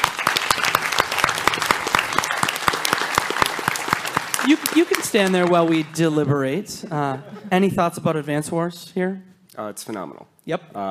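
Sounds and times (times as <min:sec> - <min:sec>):
small group of audience applauding: 0:00.0 - 0:06.4
speech: 0:04.5 - 0:10.9.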